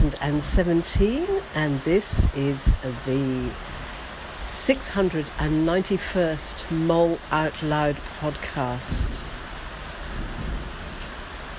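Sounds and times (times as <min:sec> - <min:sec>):
steady rain outdoors: 0:00.0 - 0:11.5
speech: 0:00.1 - 0:03.7, 0:04.4 - 0:09.3
low rumbling thunder: 0:08.9 - 0:11.5.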